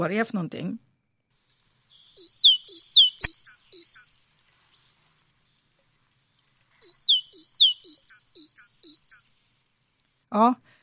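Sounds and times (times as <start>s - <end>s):
speech: 0.0s - 0.8s, 10.3s - 10.6s
great tit singing: 1.4s - 5.1s, 6.8s - 9.3s.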